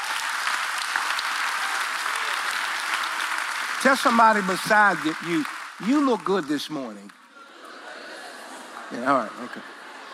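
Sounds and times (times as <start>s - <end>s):
audience applauding: 0.0s - 7.3s
speech: 3.8s - 7.2s, 8.9s - 9.8s
laughter: 7.3s - 10.1s.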